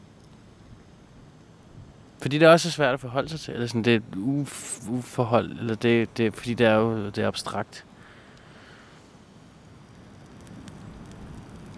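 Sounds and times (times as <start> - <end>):
fire burning through dry grass on a lawn: 0.0 - 11.7
speech: 2.2 - 7.9
fire pops and snaps: 9.6 - 11.7.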